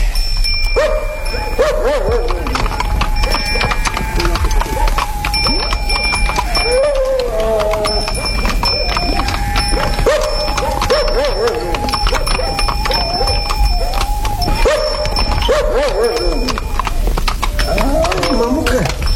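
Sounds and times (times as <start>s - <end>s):
horses walking with hooves clip-clopping: 0.0s - 19.1s
dog barking: 0.8s - 3.8s, 9.7s - 17.0s
voices talking: 1.2s - 19.1s.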